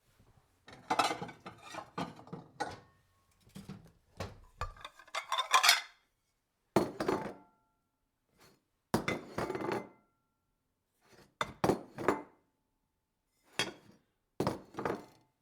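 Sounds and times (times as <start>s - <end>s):
household bowls on a table: 0.6s - 6.1s, 6.8s - 7.5s, 8.3s - 10.1s, 11.0s - 12.5s, 13.3s - 15.2s.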